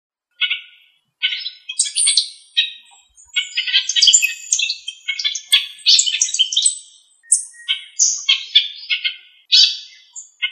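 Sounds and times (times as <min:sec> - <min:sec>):
bird calls with chirps, squawks and whistles: 0:00.3 - 0:10.5.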